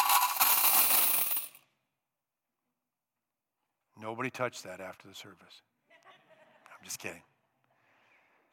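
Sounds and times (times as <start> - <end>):
coins poured out as a rich person's temple offering: 0.0 - 1.6
speech: 4.0 - 5.7, 6.8 - 7.3.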